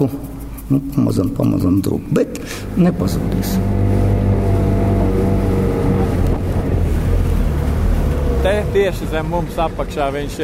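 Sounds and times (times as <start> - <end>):
speech: 0.0 - 4.1, 8.4 - 10.4
water noise: 0.0 - 10.4
motorboat engine running on a wide river: 2.1 - 10.4
rushing wind: 2.4 - 9.8.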